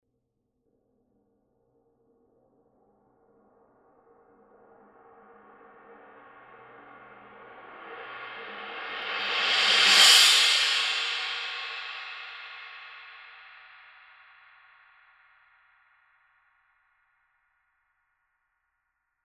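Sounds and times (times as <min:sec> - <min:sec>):
medium crash cymbal roll: 0:08.1 - 0:14.1.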